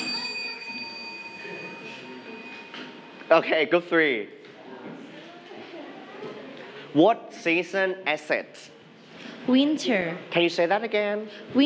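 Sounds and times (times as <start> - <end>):
bell ringing: 0.0 - 3.6
speech: 3.3 - 4.4, 7.0 - 8.7, 9.5 - 11.6.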